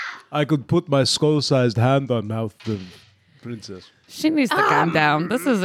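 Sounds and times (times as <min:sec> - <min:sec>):
speech: 0:00.3 - 0:05.6
person screaming high-pitched away from the microphone: 0:04.5 - 0:05.6.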